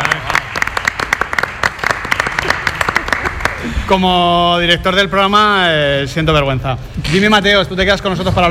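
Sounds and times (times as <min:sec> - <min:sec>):
audience applause: 0:00.0 - 0:03.8
speech: 0:03.9 - 0:08.5.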